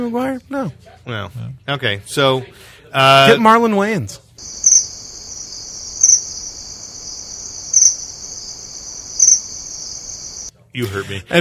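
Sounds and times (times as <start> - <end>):
speech: 0.0 - 4.6, 10.8 - 11.3
crickets chirping: 4.4 - 10.5.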